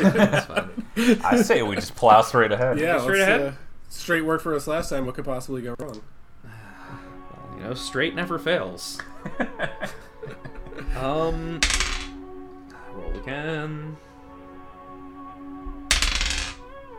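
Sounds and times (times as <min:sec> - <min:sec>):
laughter: 0:00.0 - 0:02.0, 0:09.2 - 0:11.4
speech: 0:00.0 - 0:06.2, 0:07.6 - 0:10.0, 0:10.9 - 0:11.9, 0:13.2 - 0:14.1
dice clattering across a tabletop: 0:11.6 - 0:12.2, 0:15.9 - 0:16.6.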